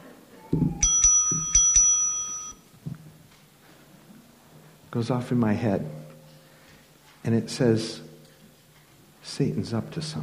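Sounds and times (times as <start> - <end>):
small bell ringing: 0.7 - 2.6
speech: 5.0 - 6.0, 7.2 - 8.1, 9.3 - 10.2.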